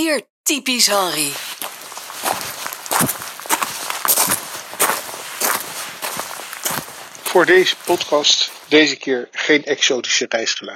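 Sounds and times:
speech: 0.0s - 1.7s, 3.0s - 3.3s, 7.3s - 10.7s
footsteps with crisp scuffs or crunches: 0.8s - 8.8s.

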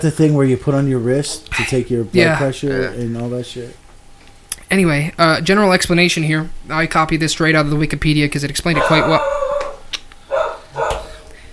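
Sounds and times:
speech: 0.0s - 3.8s, 4.7s - 9.4s
dog barking: 8.7s - 11.3s.

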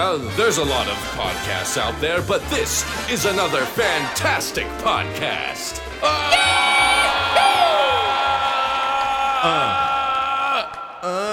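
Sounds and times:
speech: 0.0s - 6.6s, 9.4s - 9.8s
man screaming a long strained scream: 6.0s - 11.3s.

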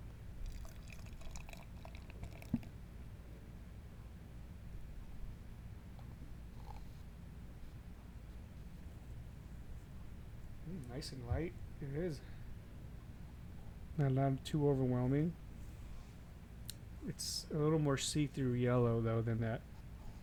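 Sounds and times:
IPA beer pouring into a glass: 0.4s - 2.8s
speech: 10.9s - 12.4s, 14.0s - 15.4s, 17.0s - 19.7s.

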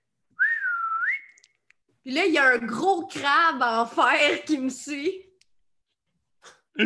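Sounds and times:
person whistling a single wavering note: 0.4s - 1.5s
speech: 2.0s - 5.2s.

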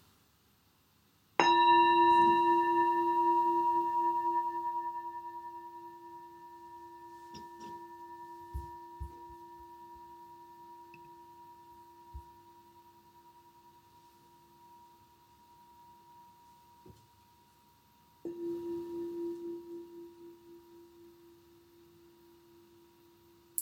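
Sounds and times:
meditation bell ringing: 1.4s - 12.2s, 18.2s - 20.9s.

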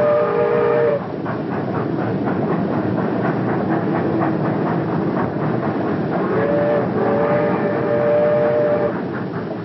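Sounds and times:
banana train whistle: 0.0s - 1.1s, 6.2s - 9.0s
rhythmic clickety-clack of train on railway track: 0.0s - 9.6s
train hauling bananas rumbling on a banana railway: 0.0s - 9.6s.

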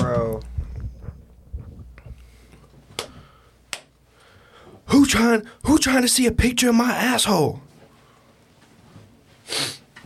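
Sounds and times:
speech: 5.1s - 7.7s
person sneezing into a microphone: 9.5s - 9.8s.

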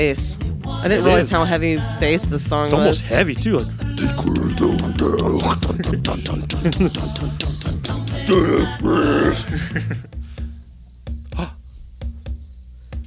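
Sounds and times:
speech: 0.0s - 10.2s
laughter: 1.0s - 1.5s, 4.1s - 8.5s, 9.2s - 10.2s
grunting: 4.0s - 6.5s, 8.2s - 9.8s, 11.3s - 11.6s
crickets chirping outside: 10.0s - 13.0s.

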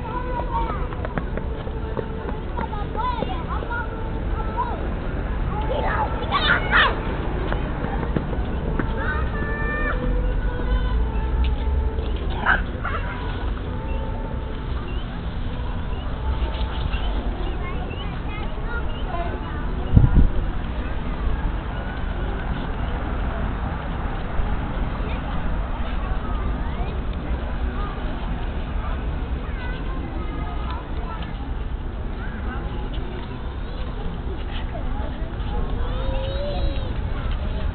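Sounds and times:
children's calls: 0.0s - 37.7s
evening crowd murmur of voices at a city square and playground: 0.0s - 37.7s
low city rumble: 0.0s - 37.7s
bright shouts: 5.8s - 7.0s.

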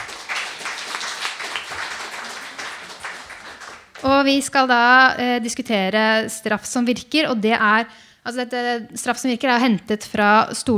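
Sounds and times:
audience applause for the panel: 0.0s - 4.1s
speech: 4.1s - 10.7s.

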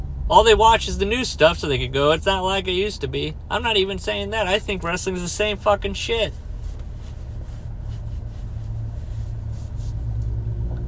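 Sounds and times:
car interior road rumble while driving: 0.0s - 10.8s
speech: 0.3s - 6.4s.

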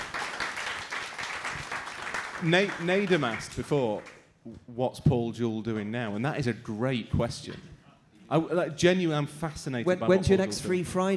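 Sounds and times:
crowd applauding: 0.0s - 4.2s
speech: 2.4s - 7.7s, 8.3s - 11.1s.

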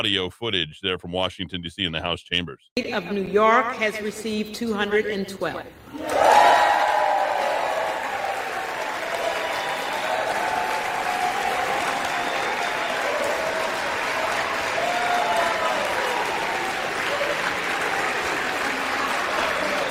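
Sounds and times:
speech: 0.0s - 6.5s
large crowd applauding in the House chamber: 5.9s - 19.8s
scattered shouts and whoops from crowd: 5.9s - 19.8s.

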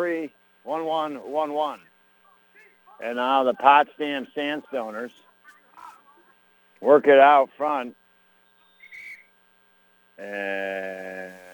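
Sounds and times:
speech: 0.0s - 1.9s, 3.0s - 5.3s, 6.8s - 8.0s, 10.2s - 11.5s
faint constant hum: 0.0s - 11.5s
referee whistle blown during a lacrosse game: 8.5s - 9.3s.

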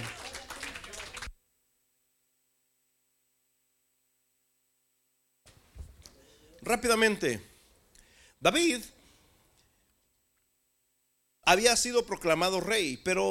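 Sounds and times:
crowd clapping: 0.0s - 1.4s
faint electrical hum: 0.0s - 13.3s
speech: 6.6s - 7.5s, 8.4s - 9.0s, 11.5s - 13.3s.

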